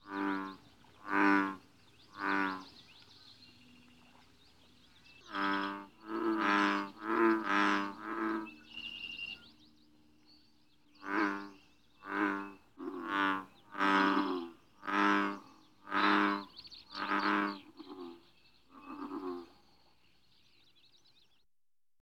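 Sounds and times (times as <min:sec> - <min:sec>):
bullfrog: 0:00.0 - 0:02.8, 0:05.2 - 0:09.4, 0:11.0 - 0:19.6.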